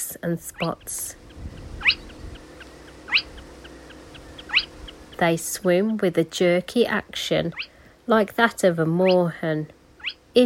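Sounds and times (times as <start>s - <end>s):
low background hum: 0.0s - 10.4s
speech: 0.1s - 1.2s, 5.2s - 9.8s
spotted crake calling: 0.4s - 5.4s, 7.4s - 7.8s, 9.0s - 9.4s, 10.0s - 10.3s.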